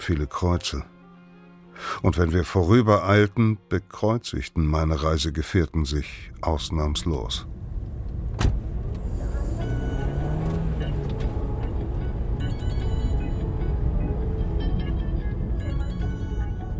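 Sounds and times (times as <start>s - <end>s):
speech: 0.0s - 1.0s, 1.8s - 7.6s
Dacia Logan taxi engine and road rumble heard from inside, road from Bistritz toward the Borgo Pass: 6.2s - 16.7s.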